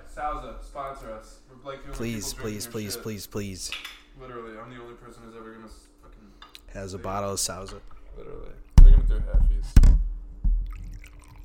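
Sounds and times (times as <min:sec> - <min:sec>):
speech: 0:00.2 - 0:10.0
drink pouring into a glass: 0:10.6 - 0:11.4.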